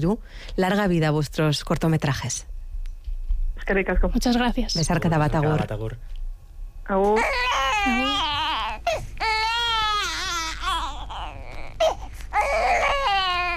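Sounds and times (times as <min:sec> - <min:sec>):
speech: 0:00.0 - 0:02.5, 0:03.6 - 0:06.2, 0:06.9 - 0:08.3
baby crying in long wavering wails: 0:07.1 - 0:13.5.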